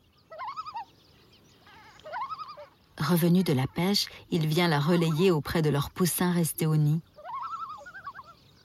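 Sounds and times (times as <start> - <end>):
common loon calling over a lake: 0.3 - 0.9, 1.6 - 5.4, 7.0 - 8.6
speech: 3.0 - 7.1.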